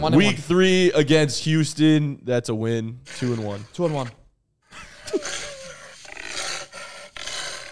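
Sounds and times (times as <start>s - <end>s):
speech: 0.0s - 4.2s
jaguar roaring: 3.0s - 4.2s, 5.1s - 7.7s.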